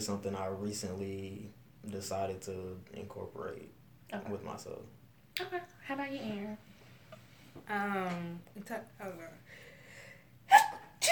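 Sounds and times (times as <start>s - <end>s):
speech: 0.0s - 6.7s, 7.6s - 9.6s
person sneezing sharply and loudly: 10.5s - 11.1s.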